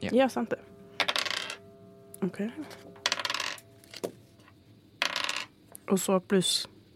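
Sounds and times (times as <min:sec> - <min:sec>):
speech: 0:00.0 - 0:00.8, 0:02.2 - 0:03.0, 0:05.9 - 0:06.8
dice clattering and tumbling across a hard surface: 0:01.0 - 0:01.6, 0:03.0 - 0:04.1, 0:05.0 - 0:05.5.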